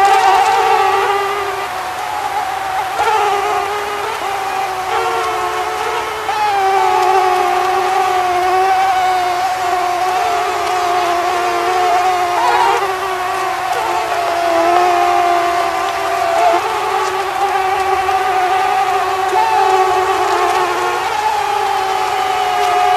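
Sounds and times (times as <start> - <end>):
mosquito whining: 0.0 - 22.9.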